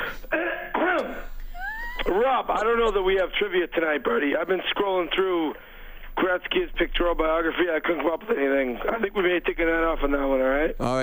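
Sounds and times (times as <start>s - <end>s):
person clearing throat: 0.0s - 1.4s
speech: 2.2s - 11.0s.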